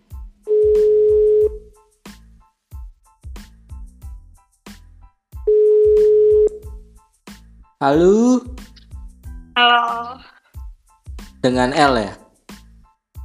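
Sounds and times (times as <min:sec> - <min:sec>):
ringback tone of an outgoing telephone call: 0:00.5 - 0:01.6, 0:05.5 - 0:06.6
speech: 0:07.8 - 0:08.6, 0:11.4 - 0:12.2.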